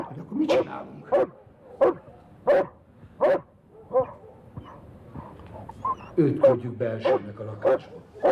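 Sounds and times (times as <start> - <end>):
speech: 0.0 - 2.0, 6.2 - 8.3
dog barking: 0.0 - 8.3
dog whining and yipping: 3.9 - 7.2.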